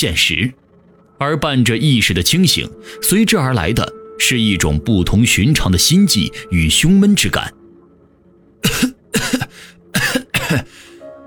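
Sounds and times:
speech: 0.0 - 0.6, 1.2 - 7.6, 8.6 - 9.4
pale man with a tight chest coughing harshly: 8.6 - 10.9.

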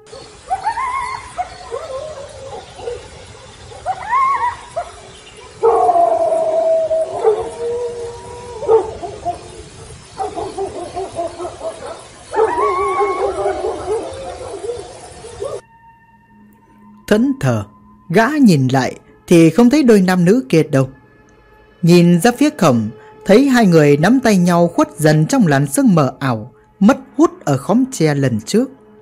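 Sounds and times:
dogs barking and howling across a village: 0.0 - 15.6
speech: 17.1 - 21.0, 21.8 - 28.8.

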